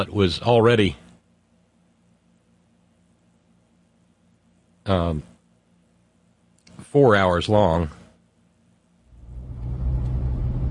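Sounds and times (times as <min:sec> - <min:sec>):
speech: 0:00.0 - 0:01.0, 0:04.9 - 0:05.3, 0:06.9 - 0:08.0
car driving down a street with engine rumble and road noise: 0:09.1 - 0:10.6.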